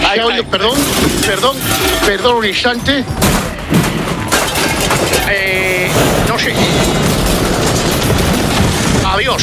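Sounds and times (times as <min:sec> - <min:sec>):
speech: 0:00.1 - 0:03.3, 0:06.4 - 0:07.0, 0:09.2 - 0:09.4
barrage of gunshot sound effects: 0:04.5 - 0:09.4.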